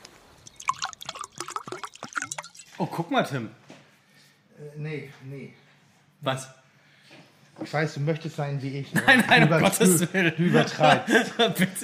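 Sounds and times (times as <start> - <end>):
drink glugging and splashing into a glass: 0.3 - 2.9
speech: 2.8 - 3.6, 4.6 - 5.6, 6.2 - 6.6, 7.6 - 11.8
laughter: 8.9 - 11.8.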